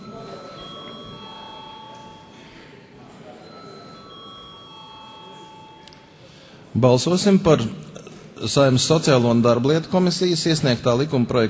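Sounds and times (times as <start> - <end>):
parliament voting call bell ringing: 0.0 - 2.4, 3.4 - 6.1
murmur of a large hall: 0.0 - 11.4
speech: 6.8 - 7.8, 8.4 - 11.4.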